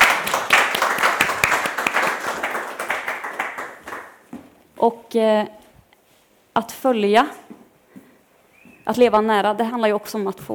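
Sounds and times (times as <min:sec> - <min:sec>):
audience applause: 0:00.0 - 0:04.2
speech: 0:04.8 - 0:05.6, 0:06.6 - 0:07.4, 0:08.9 - 0:10.5.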